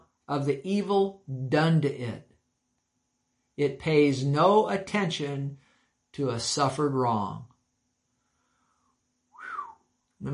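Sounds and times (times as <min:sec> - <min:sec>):
speech: 0:00.3 - 0:02.3, 0:03.6 - 0:07.5
person whistling a short breathy rising and falling whistle: 0:09.3 - 0:09.8.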